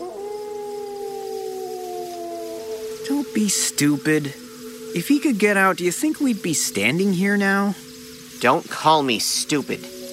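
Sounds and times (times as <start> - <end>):
Rottweiler in a pen letting out a low howl: 0.0 - 7.6, 9.6 - 10.1
speech: 3.1 - 10.0.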